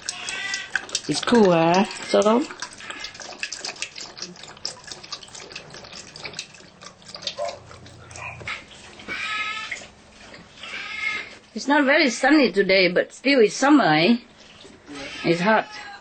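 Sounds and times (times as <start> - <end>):
water running and splashing from a tap for a dog: 0.0 - 9.9
brief water drips: 0.0 - 11.4, 13.9 - 15.2
speech: 1.1 - 2.6, 11.7 - 14.3, 15.2 - 15.8.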